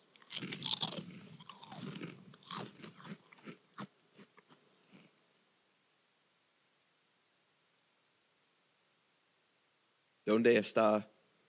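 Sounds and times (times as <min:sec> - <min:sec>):
crunching potato chips: 0:00.1 - 0:04.6
speech: 0:00.4 - 0:00.6, 0:10.3 - 0:11.1.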